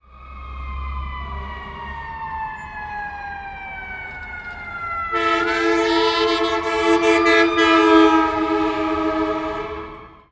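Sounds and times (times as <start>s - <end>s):
emergency fire truck: 0.0s - 10.3s.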